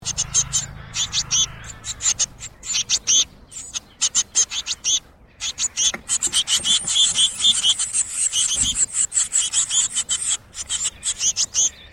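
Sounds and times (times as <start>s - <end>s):
blue tits feeding young: 0.0s - 11.9s.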